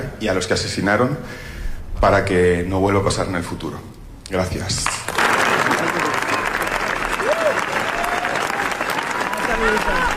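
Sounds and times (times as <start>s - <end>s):
speech: 0.2s - 5.1s
large audience applauding: 5.1s - 10.1s.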